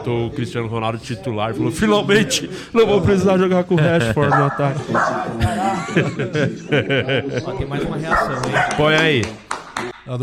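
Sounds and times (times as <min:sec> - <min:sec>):
speech: 0:00.0 - 0:09.4
busy voices and laughter: 0:02.3 - 0:08.7
dog barking excitedly: 0:08.1 - 0:09.0.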